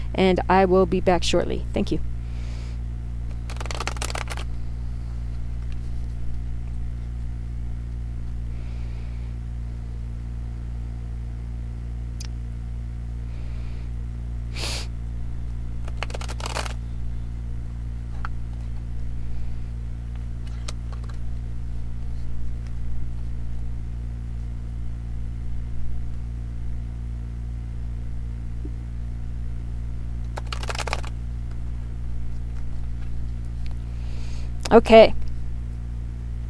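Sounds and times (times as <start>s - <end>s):
steady low electrical hum: 0.0s - 36.4s
speech: 0.1s - 2.1s, 34.8s - 35.2s
tarot cards being shuffled: 3.2s - 7.3s, 15.8s - 17.0s, 20.2s - 23.7s, 30.2s - 33.8s.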